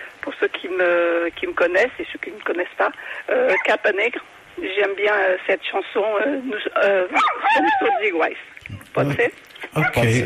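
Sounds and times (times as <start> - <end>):
speech: 0.4 - 10.2
dog barking and yipping in the background during a phone call: 7.1 - 8.1.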